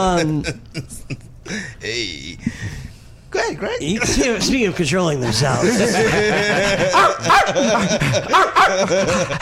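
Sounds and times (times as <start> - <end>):
laughter: 0.0 - 1.6, 5.3 - 9.4
speech: 0.0 - 9.4
dog barking and yipping: 6.9 - 8.9.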